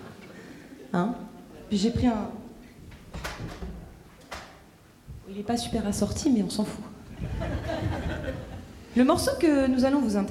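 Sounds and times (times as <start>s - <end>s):
speech: 0.9s - 2.4s, 5.3s - 7.5s, 9.0s - 10.2s
door opening with knocks and rattles: 2.9s - 4.6s
laughter: 7.1s - 8.9s.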